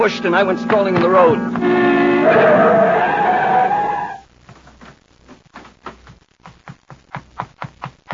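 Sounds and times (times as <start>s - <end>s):
speech: 0.0s - 3.2s
car braking hard with tire screech on a highway: 1.2s - 4.2s.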